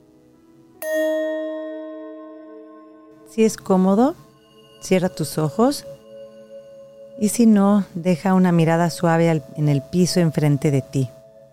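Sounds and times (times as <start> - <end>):
meditation bell struck to begin a guided mindfulness meditation: 0.8 - 8.5
speech: 3.3 - 4.2, 4.8 - 6.0, 7.2 - 11.2.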